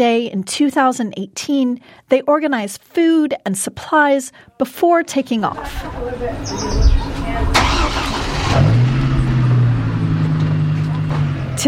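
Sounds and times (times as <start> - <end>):
speech: 0.0 - 7.5
faint voices: 5.4 - 7.6
car engine cranking and catching then humming: 5.6 - 11.6
brief high chirp: 6.4 - 7.2.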